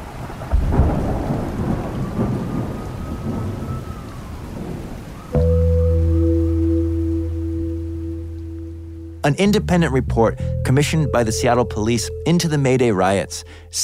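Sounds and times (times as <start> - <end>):
deep roll of thunder: 0.0 - 6.5
heavy rain in a rainstorm: 0.0 - 9.0
speech: 9.2 - 13.8.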